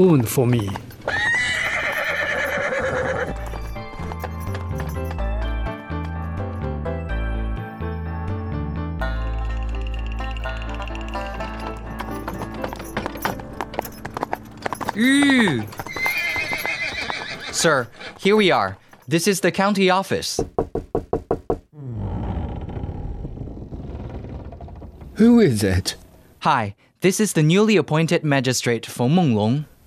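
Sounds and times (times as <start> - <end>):
speech: 0.0 - 0.9, 17.6 - 20.6, 25.2 - 29.7
horse hooves clip-clopping as it is ridden: 0.2 - 6.3, 9.3 - 19.4
horse neighing: 1.0 - 3.5, 14.7 - 18.8
steady music: 3.6 - 15.7.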